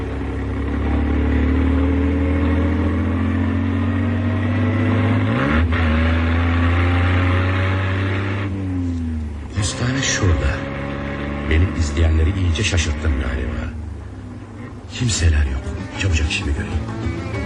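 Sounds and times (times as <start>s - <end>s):
small car engine accelerating along a smooth road: 0.0s - 17.4s.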